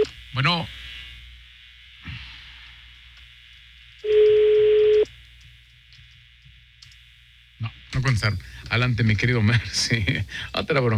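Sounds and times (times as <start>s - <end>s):
speech: 0.4s - 0.8s, 8.2s - 10.9s
ringback tone of an outgoing phone call: 4.1s - 5.0s.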